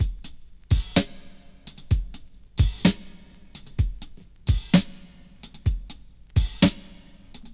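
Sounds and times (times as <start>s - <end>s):
drum groove at 76 bpm in A sharp: 0.0s - 7.5s.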